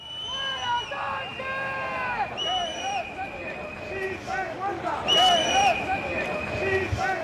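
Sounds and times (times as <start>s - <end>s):
large outdoor crowd at a parade in Madrid shouting and jeering insults: 0.0s - 7.2s.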